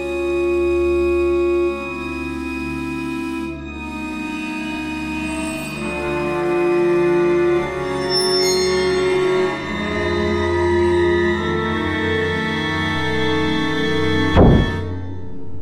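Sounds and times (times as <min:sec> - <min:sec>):
orchestral film score music: 0:00.0 - 0:15.6
loud heavy door slam: 0:14.4 - 0:14.8.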